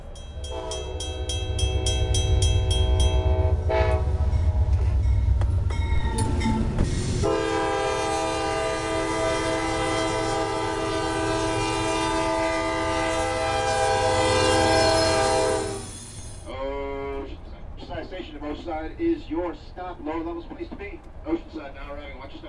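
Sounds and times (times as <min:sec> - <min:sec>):
train rumbling pulling out of Oceanside station: 0:00.0 - 0:22.4
train horn blast at Oceanside station: 0:00.4 - 0:05.4, 0:06.1 - 0:16.0, 0:16.6 - 0:17.3.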